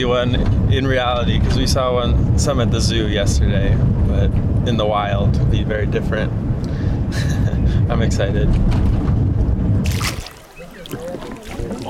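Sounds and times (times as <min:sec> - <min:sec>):
speech: 0:00.0 - 0:09.1
low rumble: 0:00.0 - 0:10.4
water sloshing and churning around a moving boat: 0:09.8 - 0:11.8.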